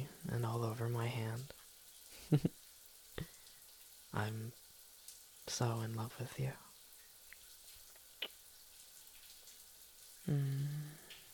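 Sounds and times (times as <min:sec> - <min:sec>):
shower running with spraying water: 0:00.0 - 0:11.3
speech: 0:00.3 - 0:01.6, 0:02.3 - 0:02.6, 0:04.1 - 0:04.6, 0:05.5 - 0:06.7, 0:10.3 - 0:10.7.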